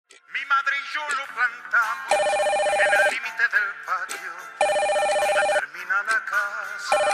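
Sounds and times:
speech: 0.4s - 7.1s
telephone ringing with a bright electronic trill: 2.1s - 3.2s, 4.6s - 5.7s, 6.9s - 7.1s.

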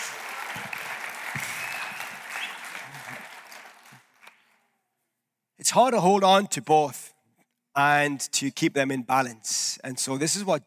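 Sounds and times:
room full of people applauding: 0.0s - 4.4s
speech: 5.7s - 7.0s, 7.8s - 10.6s.

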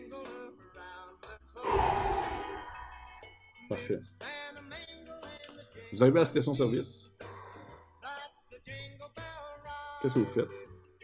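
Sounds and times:
deliberate deep inhale in box breathing: 1.6s - 3.4s, 7.2s - 7.9s
speech: 3.7s - 4.3s, 5.9s - 7.2s, 10.0s - 10.7s.

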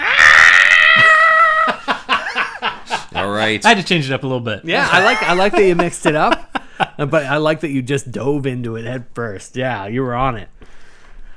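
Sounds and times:
voice imitating screaming spirits: 0.0s - 1.8s, 4.8s - 5.5s
laughter: 1.2s - 3.6s, 4.7s - 7.3s
speech: 3.2s - 6.4s, 7.0s - 10.6s.

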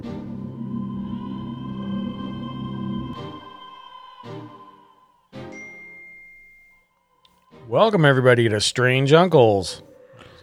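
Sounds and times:
computer notification ding with bell-like chimes: 5.5s - 6.8s
speech: 7.7s - 9.9s.

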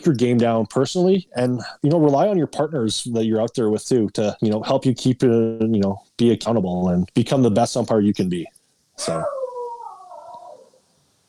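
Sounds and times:
speech: 0.0s - 9.4s
dog yelping in a drawn-out tonal whine: 9.0s - 10.8s.

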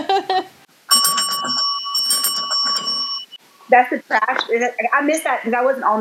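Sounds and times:
bright electronic bell chime: 0.9s - 3.4s
speech: 3.7s - 5.9s.

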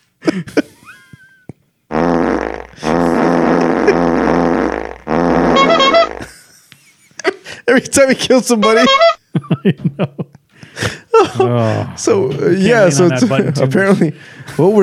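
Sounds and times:
speech: 0.4s - 0.6s, 7.7s - 14.8s
farting: 1.9s - 6.4s
laughter: 5.9s - 7.6s, 8.6s - 12.0s, 12.8s - 14.2s.

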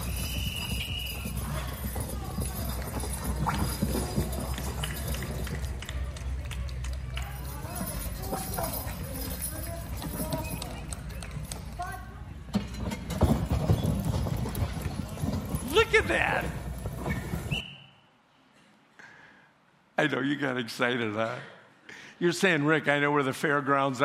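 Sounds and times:
horses' hooves clip-clopping while pulling heavy loads: 0.0s - 17.6s
busy outdoor background: 0.0s - 18.3s
speech: 20.1s - 21.6s, 22.2s - 24.0s.

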